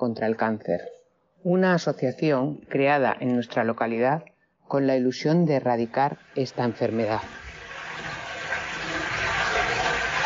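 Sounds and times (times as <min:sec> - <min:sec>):
speech: 0:00.0 - 0:07.4
steady rushing water: 0:06.2 - 0:10.2.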